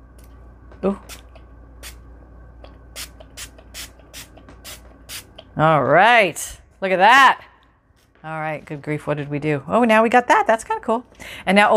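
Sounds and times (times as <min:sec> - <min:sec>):
low steady hum: 0:00.0 - 0:10.5
speech: 0:00.8 - 0:01.2, 0:05.6 - 0:07.5, 0:08.2 - 0:11.7
trigger spray bottle spritzing dye or ink: 0:03.0 - 0:05.3.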